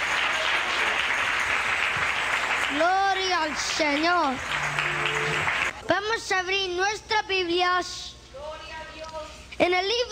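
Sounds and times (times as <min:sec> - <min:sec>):
church congregation applauding: 0:00.0 - 0:05.8
speech: 0:02.7 - 0:05.2, 0:05.9 - 0:08.2, 0:09.6 - 0:10.0.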